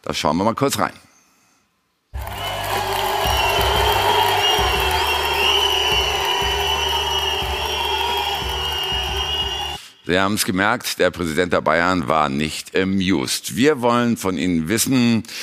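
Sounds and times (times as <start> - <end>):
speech: 0.0 - 1.1, 10.1 - 15.4
large indoor crowd whistling in protest: 2.2 - 9.8.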